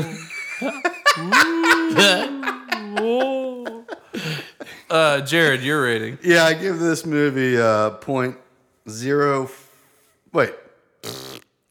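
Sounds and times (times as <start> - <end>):
speech: 0.0 - 0.9, 2.0 - 2.3, 5.0 - 9.6, 10.3 - 11.2
laughter: 0.0 - 5.2
fart: 11.0 - 11.6.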